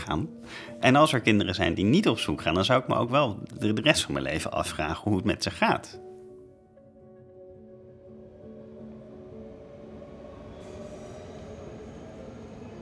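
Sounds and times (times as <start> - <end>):
speech: 0.0 - 6.1
train rumbling at a station platform: 7.7 - 12.8
faint train wheel squeal: 9.9 - 12.8.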